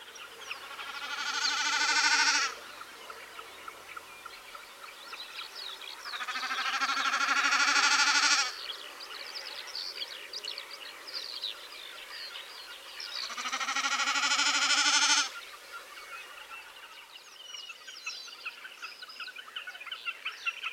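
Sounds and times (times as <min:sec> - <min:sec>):
common snipe wavering bleating hum: 0:00.9 - 0:02.6, 0:06.2 - 0:08.5, 0:13.3 - 0:15.3.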